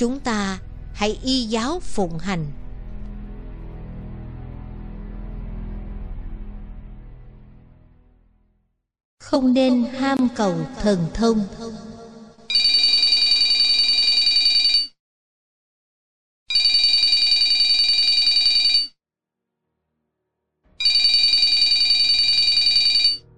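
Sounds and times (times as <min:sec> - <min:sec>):
speech: 0:00.0 - 0:02.6, 0:09.3 - 0:11.8
telephone ringing with a bright trilling bell tone: 0:12.5 - 0:14.9, 0:16.5 - 0:18.9, 0:20.8 - 0:23.2.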